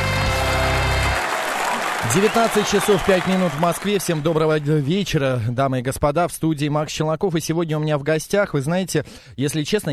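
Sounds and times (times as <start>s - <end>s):
loud steady audience applause: 0.0s - 5.2s
speech: 2.1s - 9.9s.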